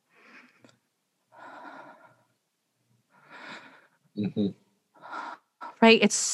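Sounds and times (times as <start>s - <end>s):
voice actor breathing quietly while hiding: 0.0s - 2.4s, 3.0s - 4.2s, 5.0s - 5.8s
speech: 4.2s - 4.6s, 5.8s - 6.3s.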